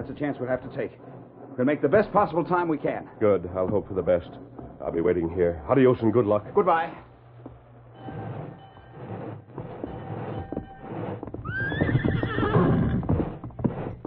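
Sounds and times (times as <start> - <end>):
horse hooves clip-clopping: 0.0 - 14.0
speech: 0.1 - 7.1
male horse whinnying: 11.4 - 13.4.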